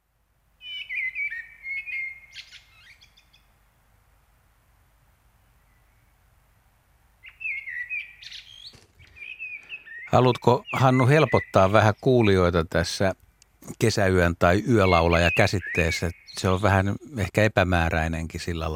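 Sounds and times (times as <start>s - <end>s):
common blackbird singing: 0.6s - 3.5s, 7.2s - 17.5s
speech: 10.1s - 13.2s, 13.8s - 18.7s.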